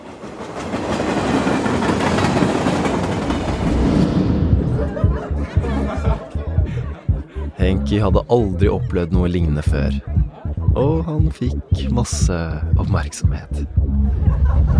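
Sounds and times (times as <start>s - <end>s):
train rolling along the rails: 0.0s - 6.3s
laughter: 4.6s - 11.6s, 13.8s - 14.7s
speech: 7.6s - 10.2s, 10.8s - 14.2s.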